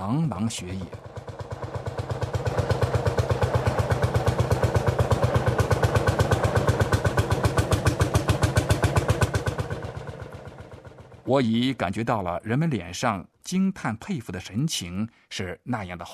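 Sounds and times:
speech: 0:00.0 - 0:01.2, 0:11.3 - 0:16.1
tractor engine hand-cranked starting and running across a snowy field: 0:00.0 - 0:12.7.

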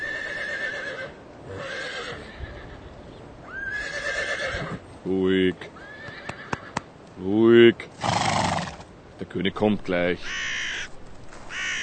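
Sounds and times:
horse neighing in long wavering whinnies: 0:00.0 - 0:02.8, 0:03.5 - 0:04.8, 0:05.8 - 0:06.8, 0:08.0 - 0:08.8
speech: 0:05.0 - 0:05.8, 0:07.2 - 0:07.9, 0:09.2 - 0:10.4.

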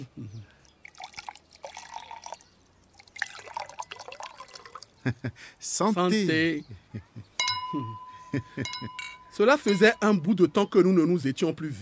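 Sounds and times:
wine pouring from a bottle: 0:00.6 - 0:05.0
laughter: 0:05.0 - 0:05.4, 0:06.6 - 0:07.3
speech: 0:05.0 - 0:07.1, 0:07.7 - 0:11.8.

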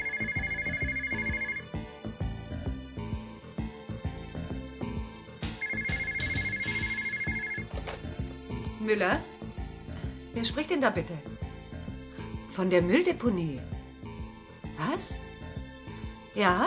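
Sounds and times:
telephone ringing in long electronic bursts: 0:00.0 - 0:01.7, 0:05.5 - 0:08.0
busy rhythmic musical backing: 0:00.0 - 0:09.9
speech: 0:08.8 - 0:09.3, 0:10.4 - 0:11.3, 0:12.6 - 0:13.7, 0:14.8 - 0:15.2, 0:16.4 - 0:16.6.

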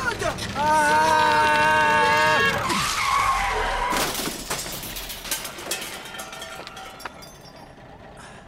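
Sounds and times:
truck tires skidding and screeching on a road: 0:00.4 - 0:05.1
clattering crash of metal as a bicycle is hit on the road: 0:03.8 - 0:07.6
debris rattling and settling: 0:03.8 - 0:08.2.

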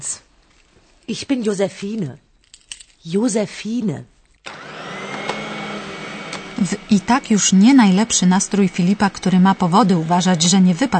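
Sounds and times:
speech: 0:00.0 - 0:00.3, 0:01.1 - 0:02.2, 0:03.0 - 0:04.1, 0:06.6 - 0:10.9
vacuum cleaner switching on and running: 0:04.5 - 0:10.9.

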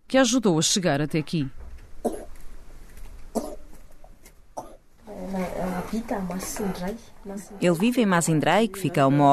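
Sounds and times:
speech: 0:00.1 - 0:02.2, 0:05.9 - 0:09.3
baby coughing in short harsh bursts: 0:02.0 - 0:02.4, 0:03.3 - 0:03.7, 0:04.6 - 0:04.8.

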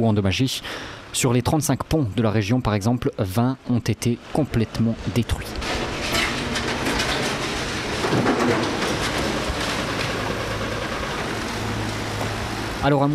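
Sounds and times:
heavy trucks and excavators rumbling while clearing rubble: 0:00.0 - 0:01.4, 0:02.1 - 0:13.1
speech: 0:00.0 - 0:05.9, 0:08.1 - 0:08.9, 0:12.8 - 0:13.1
clanks and scrapes of debris being cleared: 0:05.5 - 0:12.8.

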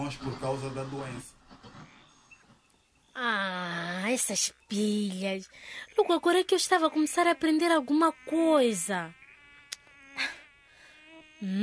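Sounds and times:
speech: 0:00.1 - 0:01.4, 0:03.2 - 0:09.2, 0:10.2 - 0:10.4, 0:11.4 - 0:11.6
anopheles mosquito buzzing: 0:03.5 - 0:11.6.

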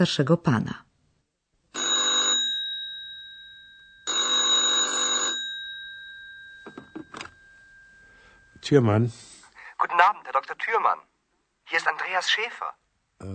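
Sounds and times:
speech: 0:00.0 - 0:00.9, 0:08.7 - 0:11.1, 0:11.7 - 0:13.3
telephone bell ringing: 0:01.7 - 0:08.6
telephone receiver being picked up: 0:06.6 - 0:07.4.

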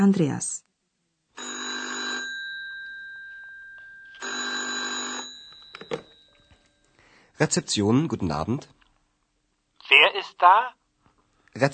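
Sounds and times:
speech: 0:00.0 - 0:00.6, 0:07.4 - 0:08.8, 0:09.9 - 0:10.8, 0:11.6 - 0:11.7
telephone ringing at a hotel reception desk: 0:01.4 - 0:07.0
telephone handset clattering as it is picked up: 0:05.4 - 0:06.7.

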